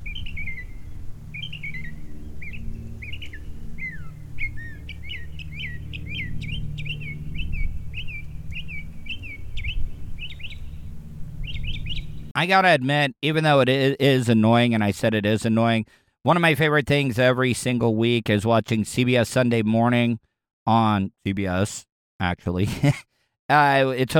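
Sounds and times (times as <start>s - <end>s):
mockingbird-like songbird mimicking other birds' songs: 0.0s - 10.8s, 11.4s - 12.2s
steady low hum: 0.0s - 12.4s
speech: 12.4s - 24.1s.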